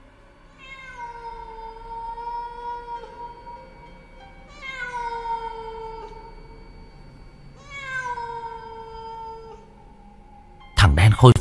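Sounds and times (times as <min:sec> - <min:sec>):
cat yowling eerily: 0:00.5 - 0:03.8, 0:04.5 - 0:06.4, 0:07.6 - 0:09.9
speech: 0:10.9 - 0:11.3.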